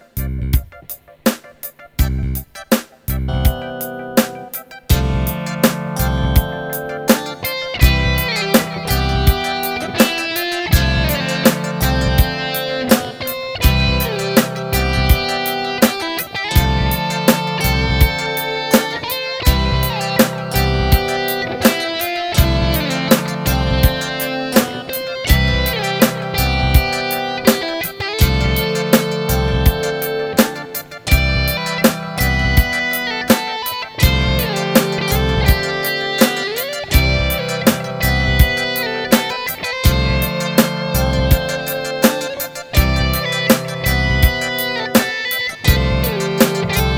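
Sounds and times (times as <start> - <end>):
ballad: 0.3 - 46.9.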